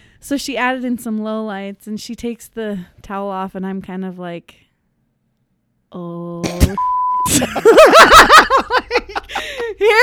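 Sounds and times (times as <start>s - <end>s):
speech: 0.2s - 4.6s, 5.9s - 10.0s
censor beep: 6.8s - 7.3s
laughter: 7.3s - 10.0s.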